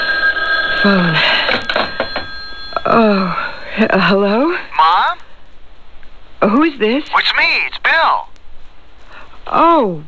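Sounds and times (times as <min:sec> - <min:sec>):
telephone ringing with a steady high electronic tone: 0:00.0 - 0:05.2
speech: 0:00.8 - 0:01.4, 0:02.9 - 0:05.2, 0:06.4 - 0:08.3, 0:09.5 - 0:10.0.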